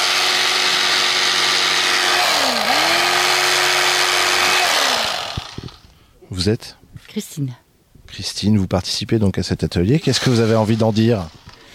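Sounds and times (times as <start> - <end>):
small electric scissors cutting material for a puppet's chest: 0.0 - 5.8
speech: 6.4 - 11.5.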